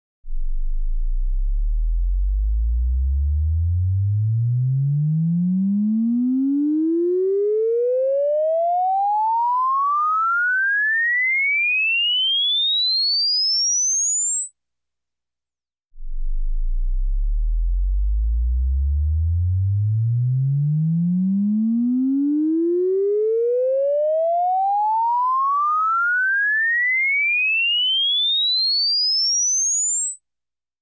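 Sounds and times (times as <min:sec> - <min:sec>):
left-right sine wave sweep test tone: 0:00.3 - 0:30.8.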